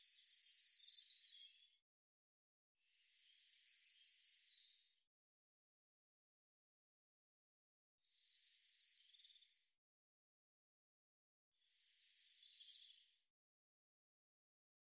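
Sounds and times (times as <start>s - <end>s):
bird singing sharp descending chirps: 0.0s - 1.7s, 3.2s - 5.0s, 8.2s - 9.6s, 12.0s - 13.0s.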